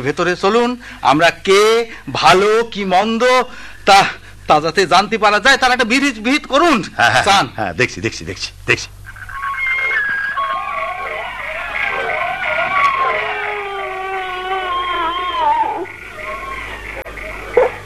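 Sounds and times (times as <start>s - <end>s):
speech: 0.0s - 9.0s
low steady hum: 0.0s - 17.8s
young child crying: 12.5s - 16.6s.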